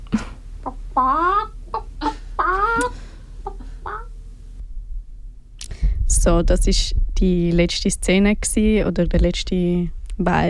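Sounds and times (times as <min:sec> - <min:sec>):
low steady hum: 0:00.0 - 0:10.4
chickens clucking: 0:00.6 - 0:04.1
speech: 0:06.3 - 0:10.4.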